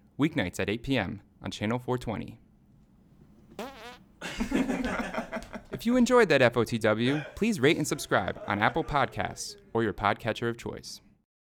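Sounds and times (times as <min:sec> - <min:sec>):
speech: 0:00.2 - 0:02.4, 0:05.8 - 0:11.1
fart: 0:03.5 - 0:04.1
laughter: 0:04.2 - 0:06.2, 0:06.8 - 0:09.7.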